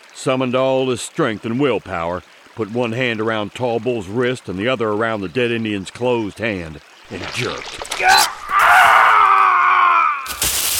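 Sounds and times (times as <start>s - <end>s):
speech: 0.2s - 8.3s
man screaming in pain: 8.0s - 10.4s.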